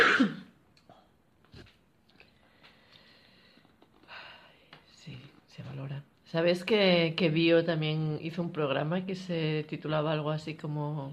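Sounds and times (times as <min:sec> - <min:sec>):
person coughing: 0:00.0 - 0:00.5
speech: 0:06.3 - 0:11.1.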